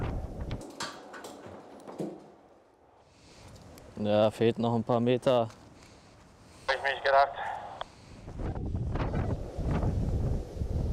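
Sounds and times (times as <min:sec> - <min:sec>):
strong wind roaring and buffeting the microphone: 0:00.0 - 0:00.8, 0:08.0 - 0:10.9
speech: 0:04.0 - 0:05.6.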